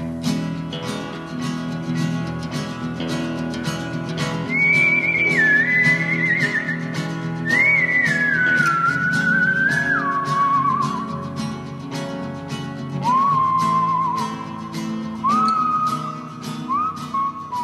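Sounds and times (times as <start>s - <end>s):
steady rhythmic musical backing with a regular beat: 0.0s - 17.6s
whistled podcast theme melody: 4.2s - 11.3s, 13.0s - 17.6s.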